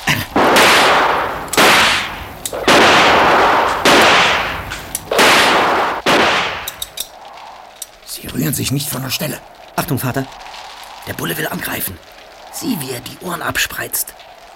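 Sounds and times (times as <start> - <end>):
gunshots fired into the air: 0.3 - 6.8
speech: 8.5 - 10.4, 11.1 - 14.2.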